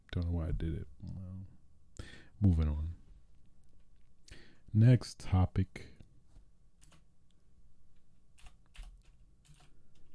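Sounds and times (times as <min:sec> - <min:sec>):
faint steady hum: 0:00.0 - 0:10.1
speech: 0:00.2 - 0:01.3, 0:02.4 - 0:03.0, 0:04.7 - 0:05.9
typing on a computer keyboard: 0:06.8 - 0:07.0, 0:08.4 - 0:10.1.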